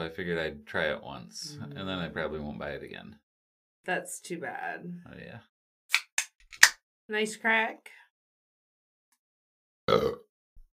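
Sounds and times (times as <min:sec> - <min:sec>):
speech: 0:00.0 - 0:03.2, 0:03.8 - 0:05.5, 0:07.1 - 0:08.0, 0:09.9 - 0:10.2
burp: 0:09.9 - 0:10.3.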